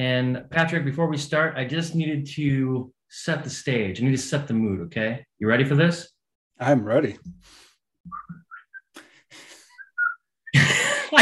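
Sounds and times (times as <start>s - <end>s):
speech: 0.0s - 8.4s
person whistling a short melodic tune: 8.1s - 9.0s, 9.7s - 10.6s.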